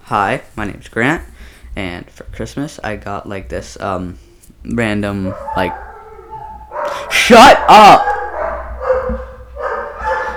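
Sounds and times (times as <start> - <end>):
speech: 0.1 - 5.9, 6.9 - 8.1
dogs barking: 5.1 - 10.3.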